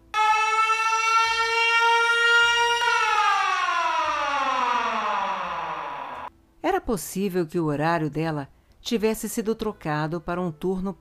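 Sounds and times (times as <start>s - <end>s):
siren wailing: 0.0s - 6.3s
speech: 6.9s - 10.9s.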